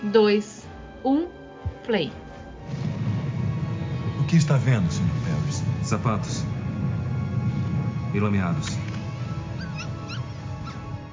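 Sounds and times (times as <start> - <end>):
speech: 0.1 - 2.2, 4.3 - 6.5, 8.1 - 8.8
steady low hum: 0.6 - 11.1
dog whimpering: 9.4 - 10.9.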